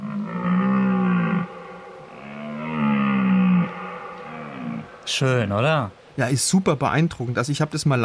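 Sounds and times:
red deer stag roaring in rut: 0.0s - 5.6s
speech: 5.1s - 8.0s.

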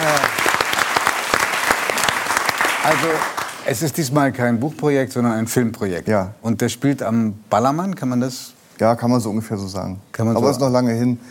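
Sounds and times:
audience applause: 0.0s - 3.7s
speech: 2.8s - 11.3s.

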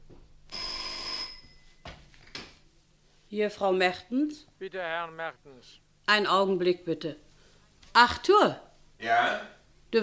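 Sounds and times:
old-fashioned telephone bell ringing: 0.5s - 1.9s
speech: 3.3s - 7.3s, 8.0s - 10.0s.

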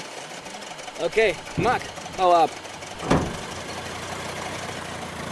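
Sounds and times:
car engine running as a loaded car drives off: 0.3s - 4.8s
car starting with a brief thump: 0.9s - 3.7s
speech: 1.0s - 3.2s.

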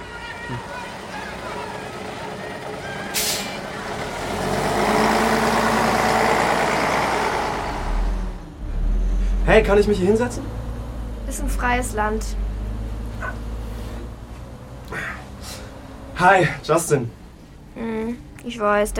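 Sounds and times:
bus engine rumbling and roaring: 0.0s - 18.9s
bus air brakes hissing: 3.0s - 3.7s
speech: 9.5s - 10.6s, 11.3s - 12.4s, 16.2s - 17.2s, 17.8s - 18.9s.

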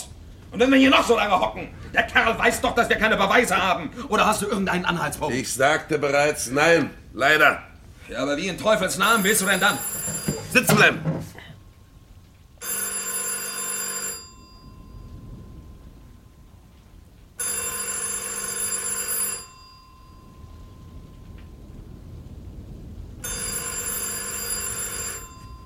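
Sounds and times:
speech: 0.5s - 11.3s
telephone bell ringing: 9.0s - 11.0s, 12.6s - 15.9s, 17.4s - 21.1s, 23.2s - 25.6s.

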